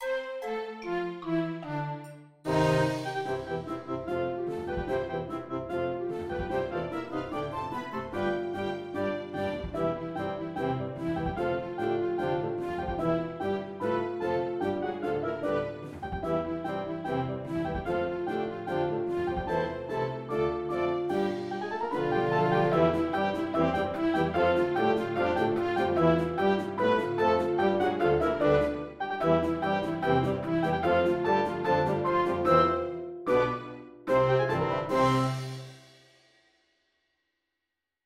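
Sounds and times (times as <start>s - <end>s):
orchestra playing a march: 0.0s - 36.0s.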